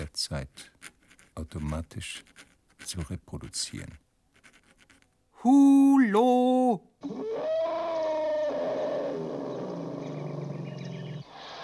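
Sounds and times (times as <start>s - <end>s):
speech: 0.2s - 0.8s, 1.4s - 4.0s, 5.4s - 7.6s
elephant trumpeting: 7.0s - 11.2s.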